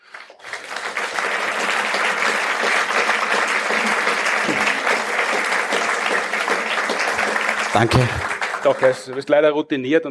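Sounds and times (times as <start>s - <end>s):
audience applause: 0.0s - 9.3s
speech: 7.8s - 10.0s.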